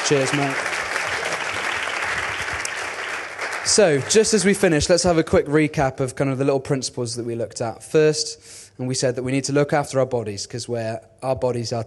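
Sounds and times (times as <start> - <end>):
audience applause: 0.0 - 4.6
speech: 0.1 - 0.7, 3.7 - 11.8.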